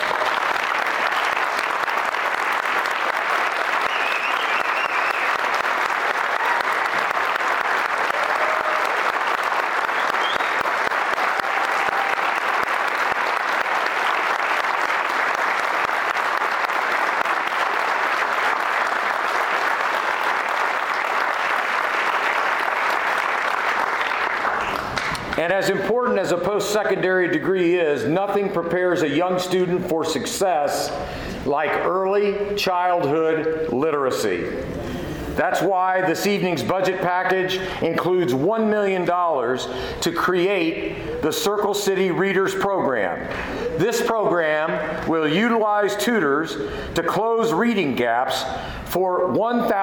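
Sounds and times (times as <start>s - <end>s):
large audience applause: 0.0s - 25.4s
speech: 25.4s - 34.8s, 35.4s - 49.8s.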